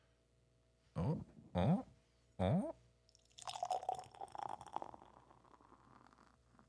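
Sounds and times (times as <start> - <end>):
speech: 1.1 - 1.8
sour ale pouring into a glass: 3.1 - 6.4.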